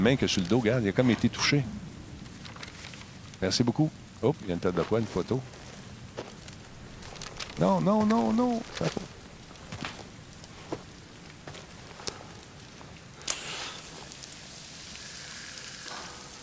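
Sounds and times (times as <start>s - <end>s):
speech: 0.0s - 1.8s, 3.4s - 5.6s, 7.6s - 9.1s
soft steady rain falling: 0.0s - 16.4s.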